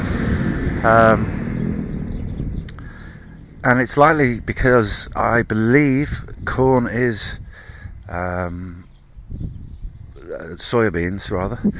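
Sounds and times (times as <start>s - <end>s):
tractor engine droning: 0.0s - 7.9s
speech: 0.8s - 1.4s, 3.6s - 7.4s, 8.1s - 8.8s, 10.3s - 11.7s.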